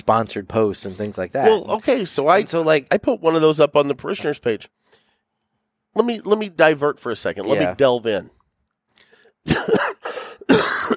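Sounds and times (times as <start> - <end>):
speech: 0.0 - 5.0, 6.0 - 8.4
person coughing: 9.5 - 10.9.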